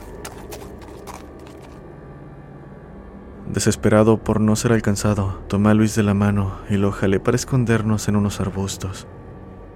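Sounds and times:
heavy hooves running through undergrowth: 0:00.0 - 0:01.8
low steady outdoor rumble: 0:00.0 - 0:09.7
speech: 0:03.5 - 0:09.2.

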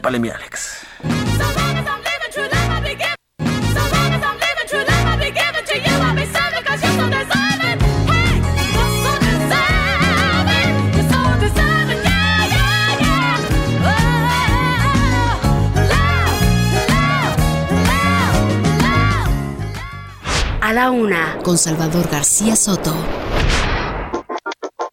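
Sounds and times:
speech: 0:00.1 - 0:01.6, 0:20.7 - 0:23.6
bass in 1970s disco song: 0:01.0 - 0:20.2
woman's soulful vocals in a 1970s disco song: 0:01.4 - 0:20.0.

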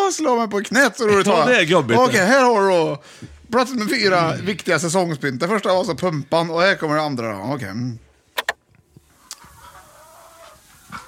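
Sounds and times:
speech: 0:00.1 - 0:08.1
hens clucking: 0:09.3 - 0:11.0.

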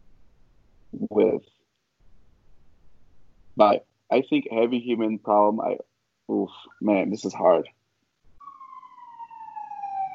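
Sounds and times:
speech: 0:03.6 - 0:07.8
emergency siren wailing outside: 0:08.4 - 0:10.1.

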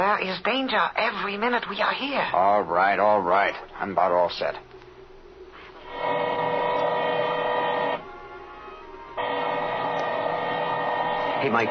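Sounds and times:
speech: 0:00.2 - 0:04.7, 0:11.4 - 0:11.6
drill boring into a safe: 0:05.9 - 0:08.0, 0:09.2 - 0:11.6.

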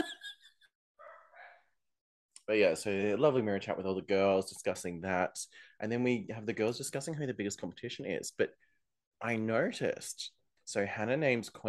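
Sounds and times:
drawn-out dog yelping call: 0:01.0 - 0:01.6
dogs barking: 0:01.0 - 0:01.7
speech: 0:02.5 - 0:08.6, 0:09.2 - 0:11.6.

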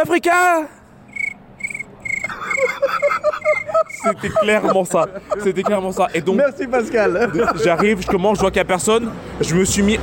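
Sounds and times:
speech: 0:00.0 - 0:00.8, 0:02.6 - 0:10.0
denser layer of quicker cricket chirps: 0:01.1 - 0:04.2
crickets chirping at night: 0:01.1 - 0:05.4
laughter: 0:02.2 - 0:08.9.

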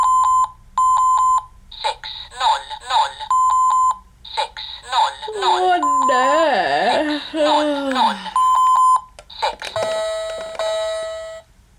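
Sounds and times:
talking electronic alarm clock beeping: 0:00.0 - 0:01.5, 0:03.3 - 0:04.0, 0:04.8 - 0:06.5, 0:08.2 - 0:09.1, 0:09.8 - 0:11.5
synthetic voice of talking alarm clock announcing time: 0:01.8 - 0:03.3, 0:04.3 - 0:08.4.

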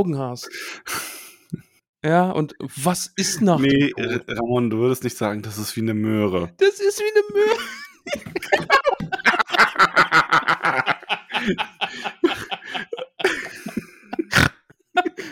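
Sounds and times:
speech: 0:00.0 - 0:08.8, 0:11.4 - 0:12.1
person grunting: 0:03.7 - 0:04.5
snorting laughter and chuckles: 0:08.0 - 0:15.3.

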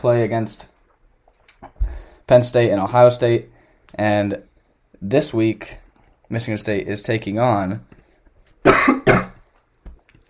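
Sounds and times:
speech: 0:00.0 - 0:00.7, 0:02.3 - 0:07.9
person coughing: 0:08.6 - 0:09.4.

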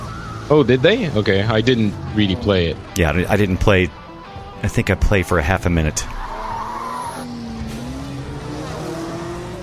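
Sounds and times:
racing engines roaring: 0:00.0 - 0:09.6
road noise: 0:00.0 - 0:09.6
speech: 0:00.5 - 0:04.0, 0:04.6 - 0:06.3
car tires skidding with a high squeal: 0:06.0 - 0:09.6.

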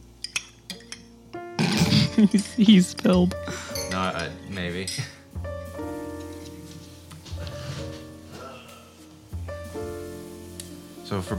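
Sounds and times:
spoon clinking against a cup stirring tea: 0:00.2 - 0:01.1, 0:03.7 - 0:05.1
speech: 0:02.2 - 0:05.2, 0:11.1 - 0:11.3.

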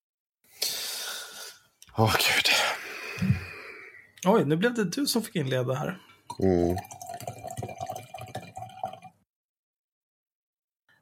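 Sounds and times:
speech: 0:02.0 - 0:02.5, 0:04.2 - 0:07.0
wine pouring into a restaurant wine glass: 0:06.3 - 0:09.2.

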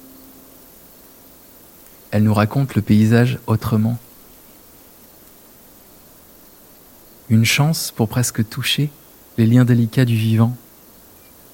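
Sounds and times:
honeybees buzzing in an apiary: 0:00.0 - 0:11.5
soft hiss of outdoor air: 0:00.0 - 0:11.5
speech: 0:02.1 - 0:04.0, 0:07.3 - 0:10.6.

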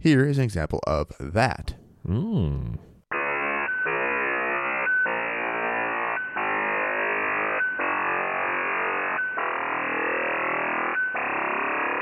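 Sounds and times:
speech: 0:00.0 - 0:02.9
ionosphere sounder radio signal pitch-varying electronic buzzes: 0:03.1 - 0:11.9.

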